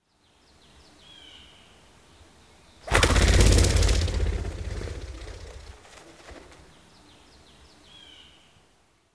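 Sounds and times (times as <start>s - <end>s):
ruffed grouse wings in flight: 2.9s - 6.8s.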